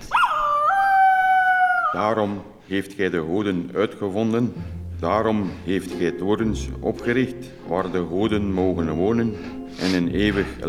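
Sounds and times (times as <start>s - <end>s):
dog howling: 0.0s - 2.0s
speech: 2.0s - 10.6s.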